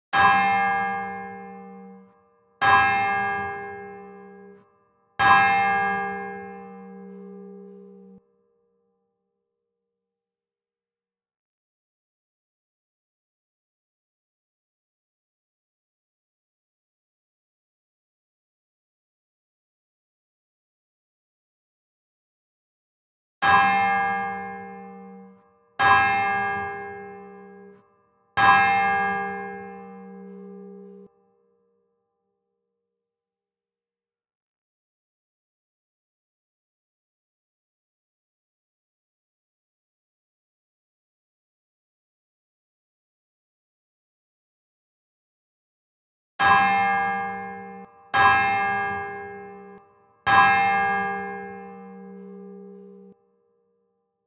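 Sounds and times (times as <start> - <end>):
prayer bells ringing: 0.2 - 8.3, 23.4 - 31.2, 46.4 - 53.4.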